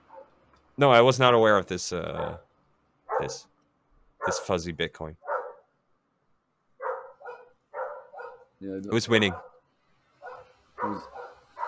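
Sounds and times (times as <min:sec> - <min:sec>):
two dogs barking at each other: 0:00.0 - 0:00.4, 0:02.1 - 0:02.5, 0:03.1 - 0:03.5, 0:04.2 - 0:04.5, 0:05.2 - 0:05.7, 0:06.8 - 0:09.6, 0:10.2 - 0:11.6
speech: 0:00.8 - 0:02.5, 0:03.2 - 0:03.5, 0:04.2 - 0:05.2, 0:08.6 - 0:09.5, 0:10.8 - 0:11.2.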